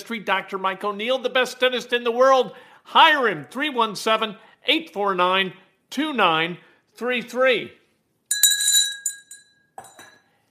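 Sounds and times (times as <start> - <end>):
speech: 0.0 - 7.8
bell ringing with bright glassy clinks at a dental office: 8.3 - 10.1.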